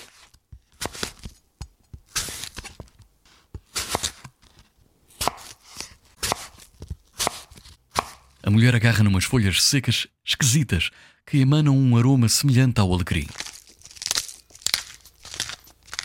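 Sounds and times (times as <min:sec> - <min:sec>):
knife chopping courgettes into small pieces: 0:00.0 - 0:08.4
speech: 0:08.5 - 0:13.4.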